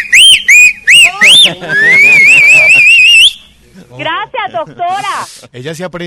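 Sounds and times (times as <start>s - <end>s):
loud piercing human whistling to call someone: 0.0s - 3.5s
laughter: 1.1s - 3.1s, 3.7s - 5.4s
speech: 4.6s - 6.0s.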